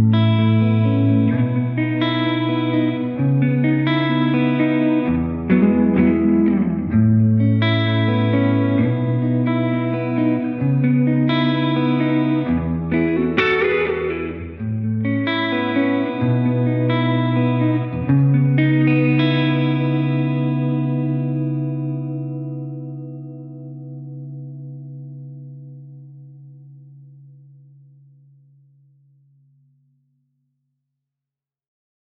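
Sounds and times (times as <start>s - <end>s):
fast modulated chorused reverb effect: 0.1s - 25.7s.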